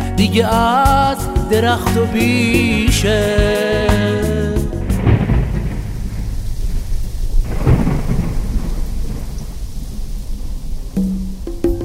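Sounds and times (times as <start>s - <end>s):
speech: 0.2s - 4.1s
heavy rain in a thunderstorm: 2.2s - 11.8s
deep rolling thunder claps: 4.6s - 11.8s.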